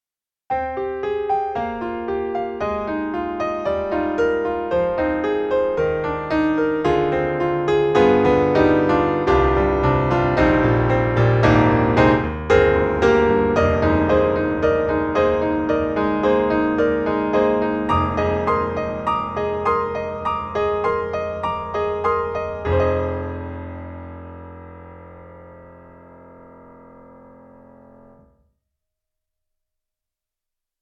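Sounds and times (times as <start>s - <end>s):
compressed grand piano: 0.5s - 28.6s.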